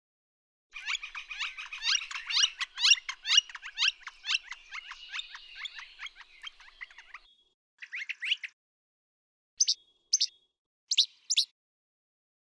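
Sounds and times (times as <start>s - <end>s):
Brown thrasher song with rapid sharp high notes: 0.8s - 8.6s, 9.6s - 11.6s.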